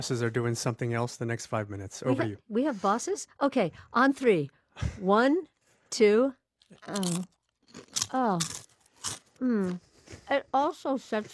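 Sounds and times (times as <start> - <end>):
speech: 0.0 - 11.3
bites crunching into crisp food: 6.6 - 10.3.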